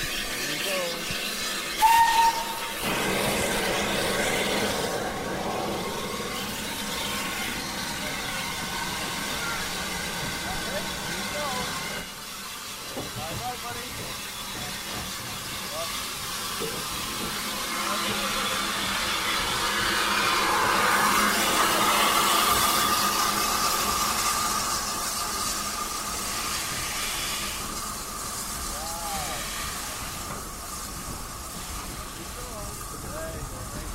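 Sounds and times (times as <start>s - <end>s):
steam locomotive hissing and rumbling as it pulls away: 0.0s - 33.9s
steam locomotive whistle: 1.8s - 3.8s.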